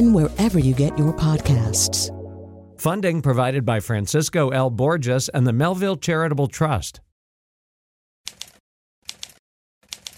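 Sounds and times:
speech: 0:00.0 - 0:02.2, 0:02.8 - 0:07.1
typewriter key strikes clacking: 0:08.3 - 0:10.1.

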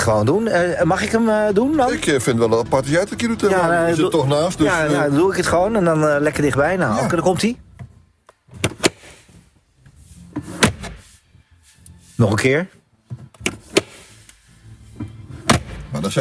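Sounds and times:
speech: 0:00.0 - 0:07.6, 0:12.2 - 0:12.8, 0:16.0 - 0:16.2
car dashboard glovebox opening and closing: 0:07.6 - 0:09.5, 0:10.3 - 0:11.1, 0:13.0 - 0:16.0.

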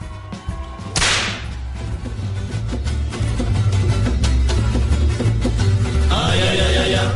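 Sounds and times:
upbeat music with heavy bass beat: 0:00.7 - 0:07.1
whip crack: 0:01.0 - 0:01.6.

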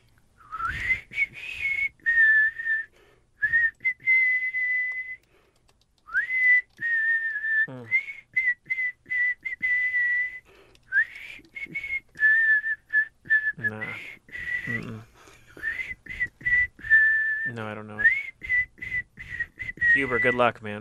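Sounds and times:
person whistling a tune: 0:00.4 - 0:05.3, 0:06.1 - 0:15.0, 0:15.6 - 0:20.5
breaths between whistled phrases: 0:02.8 - 0:03.5, 0:05.2 - 0:05.8, 0:10.4 - 0:11.4, 0:14.0 - 0:16.0, 0:18.9 - 0:19.6
speech: 0:20.0 - 0:20.7.

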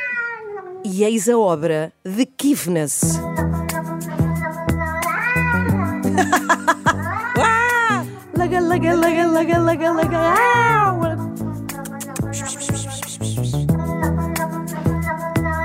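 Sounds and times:
angry cat yowls and meows chopped into a beat-driven music remix: 0:00.0 - 0:00.6, 0:03.2 - 0:06.1, 0:06.8 - 0:08.1, 0:11.6 - 0:15.6
speech: 0:00.8 - 0:03.6, 0:08.4 - 0:11.2
laughter: 0:06.2 - 0:07.6.

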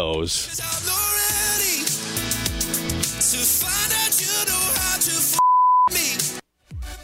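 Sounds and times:
loud pop music: 0:00.0 - 0:07.0
steady high-pitched censor bleep: 0:05.4 - 0:05.9.

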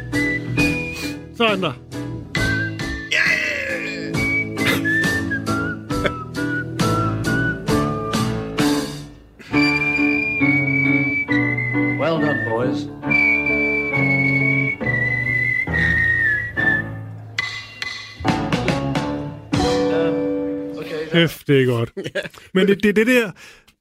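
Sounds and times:
whistled melody: 0:00.0 - 0:01.5, 0:02.1 - 0:18.2
speech: 0:01.4 - 0:01.8, 0:21.2 - 0:23.6
loud full band backing with strong rhythmic hits: 0:01.4 - 0:20.8
laughter: 0:21.9 - 0:22.7.

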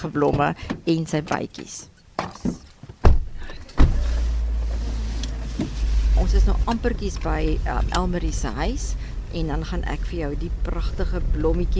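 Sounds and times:
speech: 0:00.0 - 0:02.6, 0:06.2 - 0:11.7
thump: 0:02.2 - 0:04.2
car door and seat clicks and knocks: 0:03.0 - 0:05.9
steady low car engine hum: 0:03.4 - 0:11.7.

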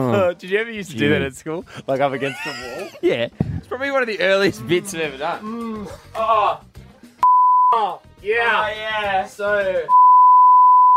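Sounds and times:
speech: 0:00.0 - 0:06.7, 0:07.7 - 0:10.0
laughter: 0:01.8 - 0:03.8
steady loud censor bleep tone: 0:07.2 - 0:07.8, 0:09.9 - 0:10.9.

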